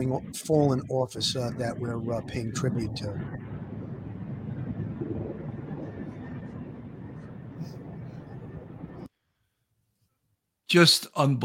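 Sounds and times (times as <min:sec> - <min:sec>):
speech: 0:00.0 - 0:03.6, 0:10.7 - 0:11.4
police helicopters flying overhead in formation: 0:00.0 - 0:09.1.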